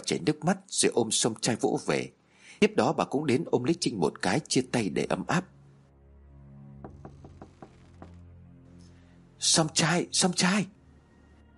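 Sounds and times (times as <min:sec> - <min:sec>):
speech: 0:00.1 - 0:05.6, 0:09.4 - 0:10.8
knocking on a door: 0:06.8 - 0:08.3.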